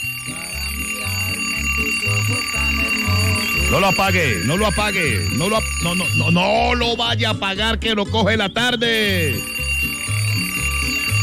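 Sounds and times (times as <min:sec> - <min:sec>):
alarm clock ringing in quick regular pulses: 0:00.0 - 0:11.2
low rhythmic backing tune: 0:00.0 - 0:11.2
speech: 0:03.7 - 0:09.5.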